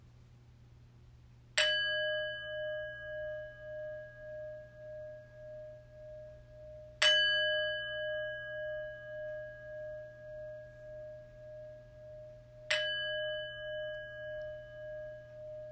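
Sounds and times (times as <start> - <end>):
faint low hum: 0.0 - 15.7
clear metallic meditation chime strikes: 1.6 - 4.6, 7.0 - 10.0, 12.7 - 15.7.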